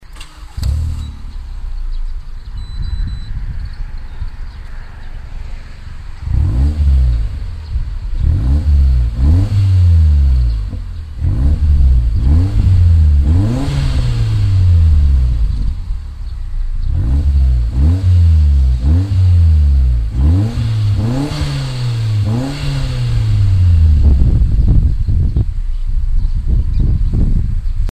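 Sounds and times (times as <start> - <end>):
car turbo engine through muffler: 0.0 - 27.9.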